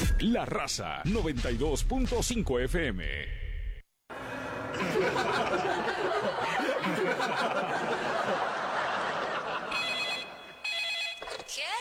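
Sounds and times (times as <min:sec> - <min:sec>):
speech: 0:00.2 - 0:03.4, 0:05.0 - 0:08.5
low laughter: 0:04.1 - 0:10.5
telephone ringing with bright repeating bell tones: 0:09.6 - 0:11.7.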